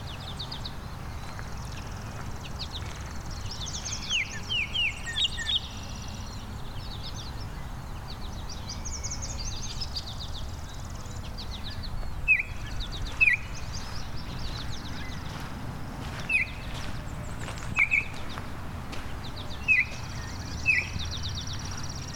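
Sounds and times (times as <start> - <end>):
chattering birds: 0.0 - 22.1
Baltimore Oriole song of short slurred whistled notes: 2.8 - 7.6, 8.4 - 15.5, 16.2 - 16.8, 17.7 - 18.3, 19.4 - 22.1.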